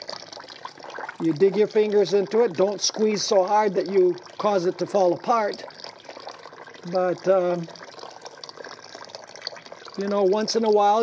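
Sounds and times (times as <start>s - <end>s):
running water pouring over dough washed by hand: 0.0s - 11.0s
speech: 1.2s - 5.8s, 6.8s - 7.8s, 10.0s - 11.0s.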